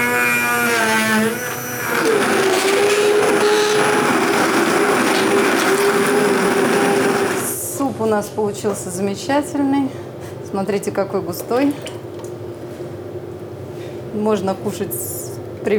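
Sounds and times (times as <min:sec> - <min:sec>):
blender pureeing thick soup: 0:00.0 - 0:08.0
speech: 0:08.2 - 0:11.9, 0:14.2 - 0:15.7.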